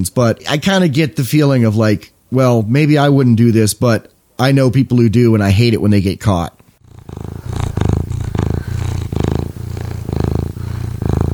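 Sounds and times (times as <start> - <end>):
speech: 0.0 - 7.4
cat purring: 6.8 - 11.3.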